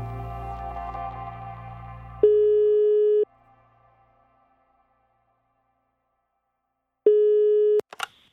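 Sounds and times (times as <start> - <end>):
long steady electronic telephone tones: 2.2 - 3.3, 7.1 - 7.9.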